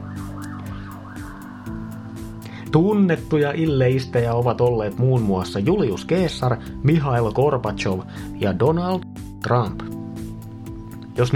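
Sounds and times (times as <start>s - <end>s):
emergency vehicle siren wailing: 0.0s - 2.4s
speech: 2.7s - 9.9s, 11.2s - 11.3s.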